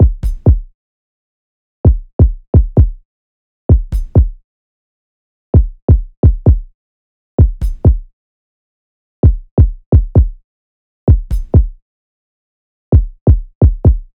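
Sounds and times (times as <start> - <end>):
kick drum loop at 130 BPM: 0.0 - 0.7, 1.9 - 3.0, 3.7 - 4.4, 5.6 - 6.7, 7.4 - 8.1, 9.2 - 10.4, 11.1 - 11.8, 12.9 - 14.1.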